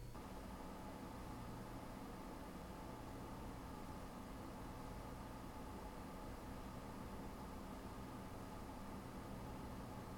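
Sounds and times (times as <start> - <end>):
low fans idling at 24 dBA: 0.2 - 10.1.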